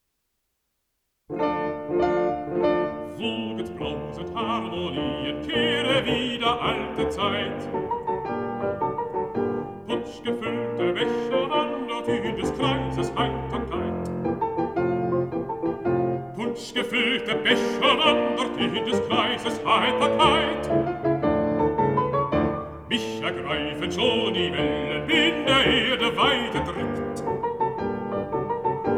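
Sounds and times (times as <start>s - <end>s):
piano accompaniment: 1.3s - 28.9s
person singing: 3.0s - 7.8s, 9.8s - 14.2s, 16.3s - 20.9s, 22.9s - 27.5s.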